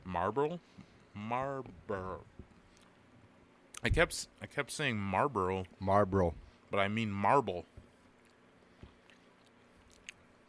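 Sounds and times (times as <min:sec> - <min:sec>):
speech: 0:00.2 - 0:02.3, 0:03.8 - 0:07.7
chewing hard food with crunchy bites into the microphone: 0:08.0 - 0:10.4.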